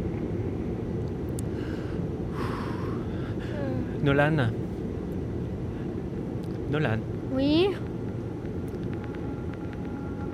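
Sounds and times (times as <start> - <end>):
airplane rumbling as it goes down: 0.0 - 10.3
speech: 4.0 - 4.6, 6.7 - 7.9
faint clicks and ticks: 7.8 - 10.0.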